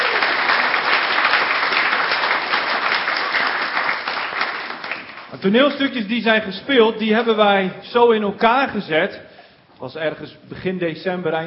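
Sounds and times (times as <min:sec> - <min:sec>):
audience applause for short plays: 0:00.0 - 0:05.4
speech: 0:05.4 - 0:11.4.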